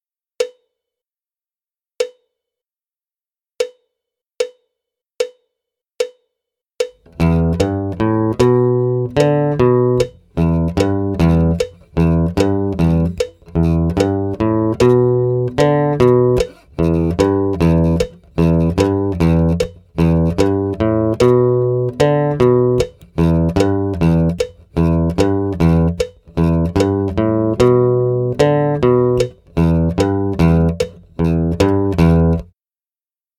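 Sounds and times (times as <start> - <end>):
acoustic guitar riff: 7.0 - 32.5.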